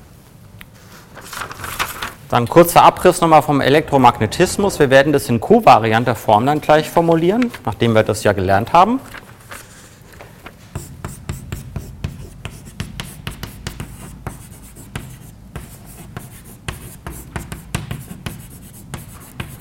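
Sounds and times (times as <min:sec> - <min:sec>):
speech: 0:02.3 - 0:09.2
writing on a board during a physics lecture: 0:10.7 - 0:19.5.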